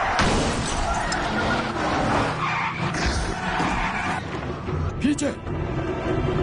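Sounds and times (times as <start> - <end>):
car crashing into a police car: 0.0 - 4.4
car tires screeching in a skid: 0.0 - 6.0
car engine roaring: 0.0 - 6.3
speech: 5.2 - 5.6.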